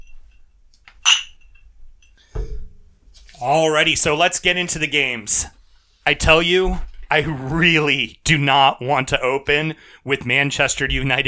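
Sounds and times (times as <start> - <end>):
glasses clinking in a toast: 1.0 - 2.2
speech: 3.4 - 11.2.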